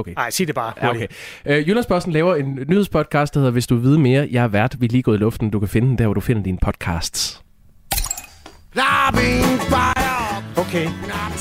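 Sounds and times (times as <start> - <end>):
speech: 0.0 - 7.4, 8.7 - 10.0, 10.6 - 11.3
drinking glasses clinking as they are picked up: 7.9 - 8.6.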